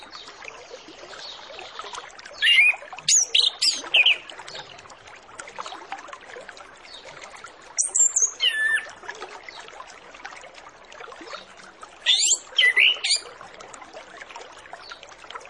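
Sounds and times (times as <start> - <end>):
orange-headed thrush whistled lure song: 2.4 - 4.3, 7.8 - 8.9, 12.1 - 13.3.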